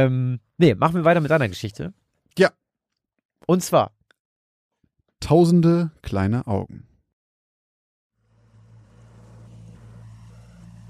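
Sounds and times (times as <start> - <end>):
speech: 0.0 - 2.6, 3.4 - 4.0, 5.2 - 6.9
small boat motor chugging through narrow canals: 8.3 - 10.8.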